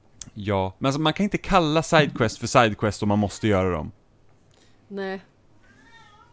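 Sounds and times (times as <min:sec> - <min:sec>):
low hum: 0:00.0 - 0:06.3
speech: 0:00.4 - 0:04.0, 0:04.9 - 0:05.3
cat meowing: 0:05.6 - 0:06.3.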